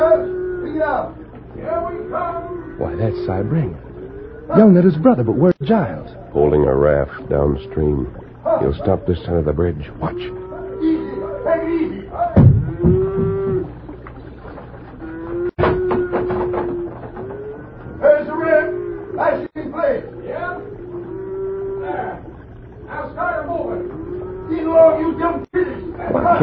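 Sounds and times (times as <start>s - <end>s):
herd of cattle mooing on a bridge: 0.0s - 14.0s, 14.6s - 26.4s
speech: 0.8s - 3.9s, 4.5s - 10.4s
sharp knocks: 12.4s - 13.8s, 15.6s - 17.4s.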